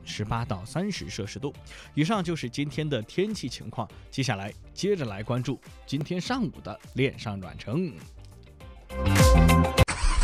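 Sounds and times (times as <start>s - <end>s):
speech: 0.1s - 8.2s
car engine starting and revving: 9.8s - 10.2s.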